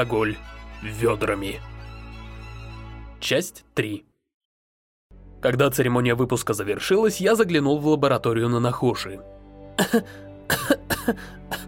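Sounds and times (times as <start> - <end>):
speech: 0.0 - 1.7, 3.2 - 4.1, 5.4 - 11.6
woman with a cold dry coughing: 9.8 - 11.6.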